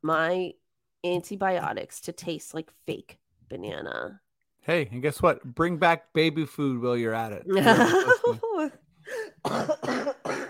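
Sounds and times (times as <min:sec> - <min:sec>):
speech: 0:00.0 - 0:10.4
laughter: 0:07.5 - 0:08.8
harsh raspy coughs: 0:09.1 - 0:10.4.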